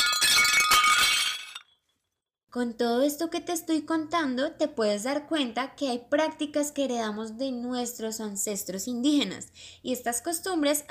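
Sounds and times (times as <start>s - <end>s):
ceramic figurine fragments tinkling: 0.0s - 1.8s
ceramic figurine breaking: 0.0s - 2.0s
speech: 2.5s - 10.8s.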